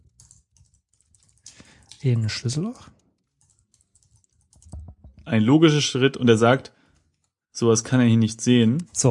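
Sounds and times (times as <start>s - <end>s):
computer keyboard typing: 0.0s - 5.4s
speech: 2.0s - 3.0s, 5.3s - 6.8s, 7.6s - 9.0s.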